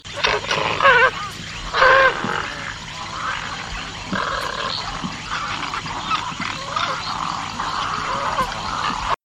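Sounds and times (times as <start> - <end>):
great egret calling: 0.0 - 9.2.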